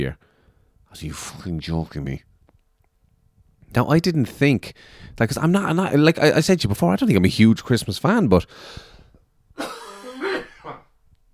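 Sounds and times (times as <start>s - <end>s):
speech: 0.0s - 0.3s, 0.9s - 2.3s, 3.7s - 8.9s
harsh throaty coughing: 9.6s - 11.0s.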